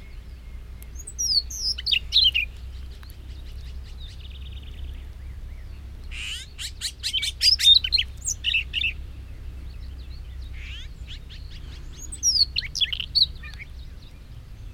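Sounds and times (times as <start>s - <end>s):
Siberian rubythroat singing warbling phrases: 0.0s - 14.7s
low steady hum: 0.0s - 14.7s.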